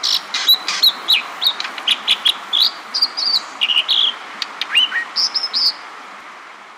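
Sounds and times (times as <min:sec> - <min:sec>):
American dipper calling: 0:00.0 - 0:05.8
rushing stream: 0:00.0 - 0:06.7.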